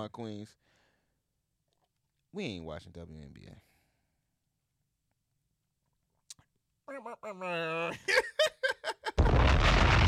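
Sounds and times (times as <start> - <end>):
speech: 0.0 - 0.8, 2.3 - 3.7, 6.9 - 9.4
bomb explosion sound effect: 9.2 - 10.0.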